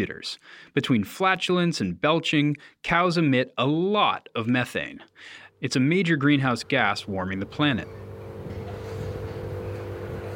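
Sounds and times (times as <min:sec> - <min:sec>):
speech: 0:00.0 - 0:08.1
giant robot vacuum cleaner picking up manure in a cow barn: 0:06.9 - 0:10.3.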